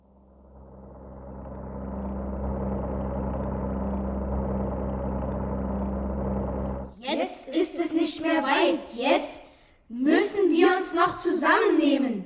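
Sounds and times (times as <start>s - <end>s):
aircraft engine running in flight on an ocean crossing: 0.0s - 6.9s
speech: 7.3s - 12.2s.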